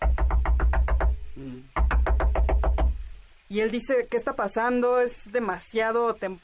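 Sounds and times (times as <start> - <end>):
frantic heavy knocking on a door: 0.0 - 3.1
speech: 3.5 - 6.4.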